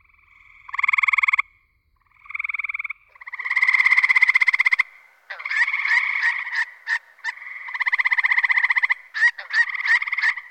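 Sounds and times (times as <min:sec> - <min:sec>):
gray treefrog Hyla versicolor trilling: 0:00.0 - 0:10.4.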